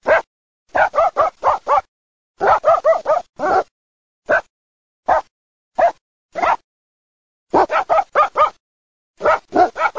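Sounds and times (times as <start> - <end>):
dog barking: 0.0 - 3.7, 4.3 - 6.6, 7.5 - 8.6, 9.2 - 9.9.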